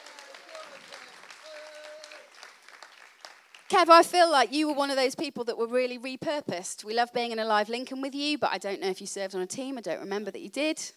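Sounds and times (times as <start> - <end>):
crowd clapping: 0.0 - 4.0
speech: 3.7 - 10.9.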